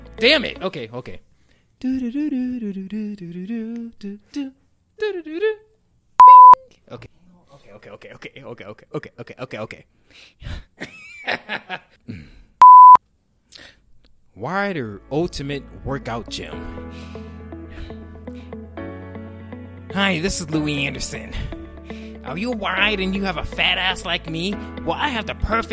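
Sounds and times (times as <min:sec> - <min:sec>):
speech: 0:00.2 - 0:05.7, 0:06.9 - 0:12.3, 0:14.4 - 0:17.3, 0:20.0 - 0:21.6, 0:22.3 - 0:25.7
censor bleeps added in editing: 0:06.2 - 0:06.6, 0:12.6 - 0:13.0
giggly laughter: 0:10.8 - 0:12.0.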